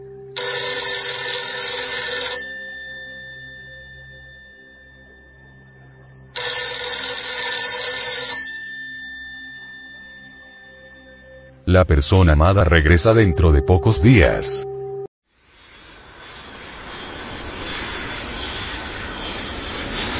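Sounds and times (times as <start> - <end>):
telephone ringing for an incoming call: 0.4 - 11.6
speech: 11.7 - 14.7.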